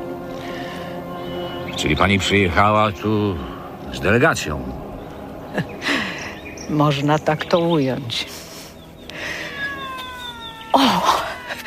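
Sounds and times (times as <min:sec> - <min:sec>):
speech: 0:01.8 - 0:04.8, 0:05.5 - 0:05.7, 0:06.7 - 0:08.3
cat meowing: 0:09.2 - 0:11.6.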